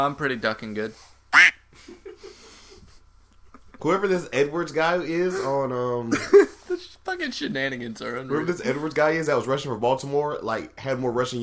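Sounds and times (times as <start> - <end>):
speech: 0.0 - 2.0, 3.8 - 11.4
nasal duck quacks: 1.3 - 1.6.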